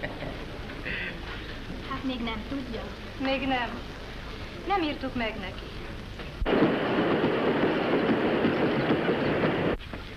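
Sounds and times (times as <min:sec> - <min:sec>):
speech: 0:02.0 - 0:04.0, 0:04.7 - 0:05.8
train pulling into station platform: 0:06.5 - 0:09.8.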